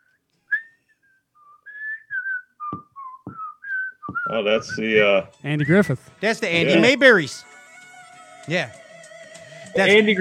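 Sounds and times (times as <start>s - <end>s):
person whistling a fishing song theme melody: 0.0s - 4.8s
soft thumps: 2.6s - 5.2s
speech: 4.3s - 7.5s, 8.5s - 8.8s, 9.8s - 10.1s.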